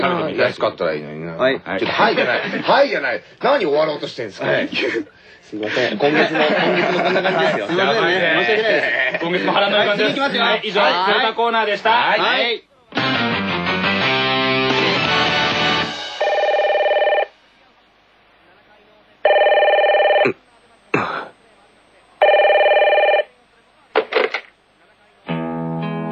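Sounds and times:
speech: 0.0s - 13.4s
laughter: 1.8s - 2.9s, 4.5s - 10.4s
music: 12.9s - 16.3s, 25.3s - 26.0s
telephone ringing for a morning wake-up call: 16.2s - 17.3s, 19.2s - 20.3s, 22.2s - 23.3s.

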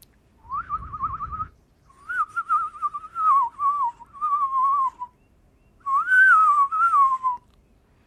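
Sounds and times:
person whistling a bird call to lure birds while birdwatching: 0.4s - 5.2s, 5.8s - 7.4s.

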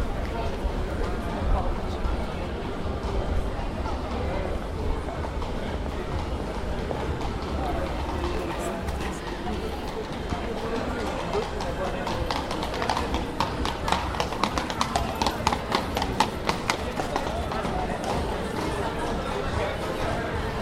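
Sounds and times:
busy outdoor crowd voices near a market square: 0.0s - 20.6s
hooves of two horses clip-clopping on a paved street: 5.2s - 19.2s.

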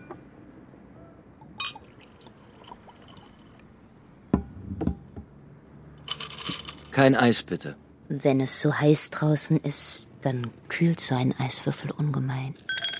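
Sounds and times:
glass knocks and clinks: 1.4s - 2.0s, 12.6s - 12.9s
cognac poured into a glass: 1.6s - 3.7s
speech: 7.0s - 12.8s.

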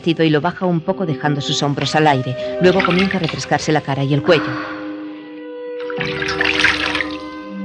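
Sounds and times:
speech: 0.0s - 4.8s
water poured from a jug into a basin: 2.6s - 3.7s, 5.8s - 7.5s.

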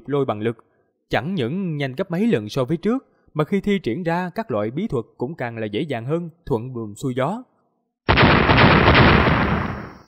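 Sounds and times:
speech: 0.1s - 9.1s
explosive boom from a thunder orb colliding with a flaming blade: 8.1s - 10.0s.

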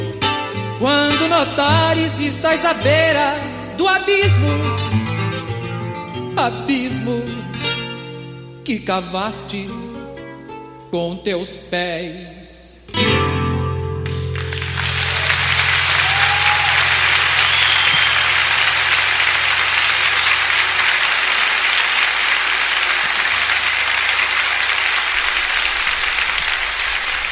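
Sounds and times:
live song performance music: 0.0s - 8.6s, 12.9s - 26.2s
speech: 0.8s - 5.0s, 6.4s - 7.5s, 8.7s - 9.9s, 10.9s - 12.8s
audience applauding after a live song performance: 14.0s - 27.2s.

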